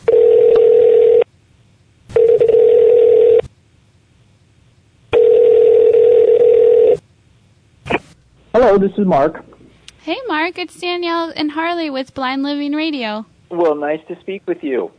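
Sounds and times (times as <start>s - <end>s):
mid-pitched telephone line tone bursts as a call is placed: 0.0s - 1.2s, 2.2s - 3.4s, 5.1s - 7.0s
speech: 8.8s - 14.9s.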